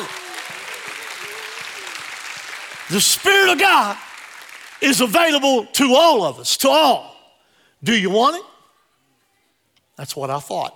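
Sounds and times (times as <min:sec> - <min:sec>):
large audience clapping in praise: 0:00.0 - 0:05.4
speech: 0:02.9 - 0:04.1, 0:04.8 - 0:07.1, 0:07.8 - 0:08.5, 0:10.0 - 0:10.7.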